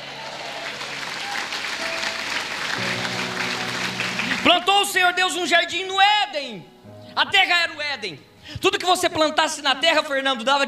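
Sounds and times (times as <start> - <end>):
audience applauding: 0.0 - 5.2
sustained organ or keyboard tones: 1.1 - 7.4
speech: 4.4 - 10.6.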